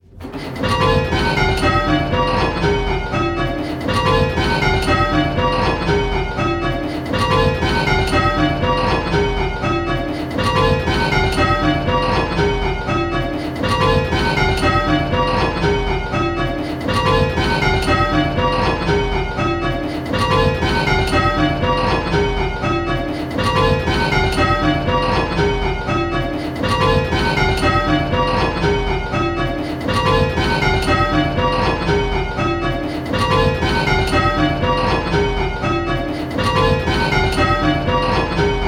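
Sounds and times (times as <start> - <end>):
six bells striking rounds: 0.2 - 38.6.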